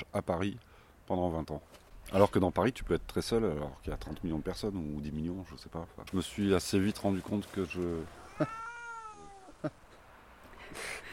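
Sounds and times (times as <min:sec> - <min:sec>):
speech: 0:00.1 - 0:08.6
cat meowing: 0:08.2 - 0:09.7.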